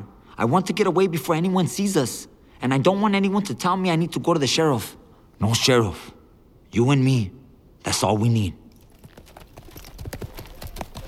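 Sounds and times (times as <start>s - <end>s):
speech: 0.4s - 8.6s
horse hooves of riders travelling at night: 8.7s - 11.0s.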